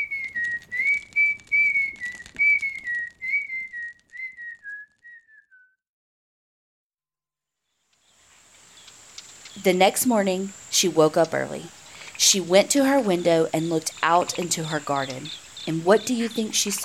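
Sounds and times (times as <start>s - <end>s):
person whistling a wavering melodic tune: 0.0s - 5.8s
soft hiss: 7.6s - 16.8s
speech: 9.6s - 16.8s.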